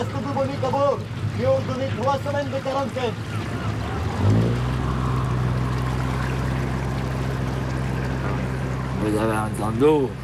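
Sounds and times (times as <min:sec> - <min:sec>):
speech: 0:00.0 - 0:03.6, 0:09.0 - 0:10.2
faint watery wash: 0:00.0 - 0:10.2
motor launch engine drone: 0:00.0 - 0:10.2.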